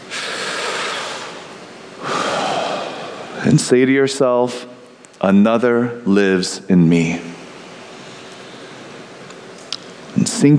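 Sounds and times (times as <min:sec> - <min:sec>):
deep breath during a guided prayer meditation: 0:00.1 - 0:03.4
speech: 0:03.4 - 0:07.4.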